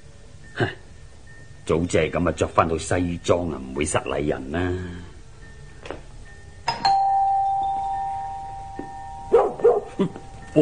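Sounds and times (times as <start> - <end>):
speech: 0.6 - 0.8, 1.7 - 5.1, 10.0 - 10.6
long clear doorbell chime: 5.4 - 10.6
fierce dog barking behind a door of an upscale residence: 9.3 - 10.0.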